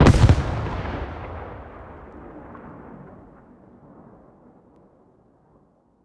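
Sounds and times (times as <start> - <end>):
explosions: 0.0 - 3.4.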